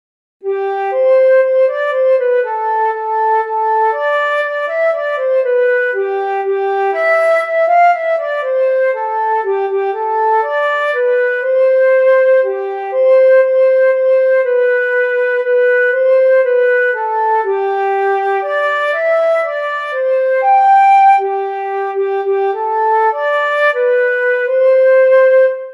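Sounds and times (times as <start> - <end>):
flute playing a Christmas carol: 0.4 - 25.7.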